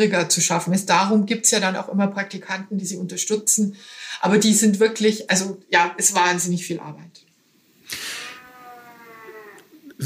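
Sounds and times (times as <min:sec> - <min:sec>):
speech: 0:00.0 - 0:07.3
cat meowing: 0:08.2 - 0:09.8.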